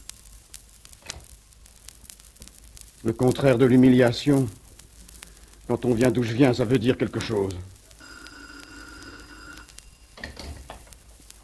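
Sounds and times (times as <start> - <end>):
speech: 3.0 - 4.6, 5.7 - 7.7
telephone ringing with electronic tone: 8.0 - 9.8.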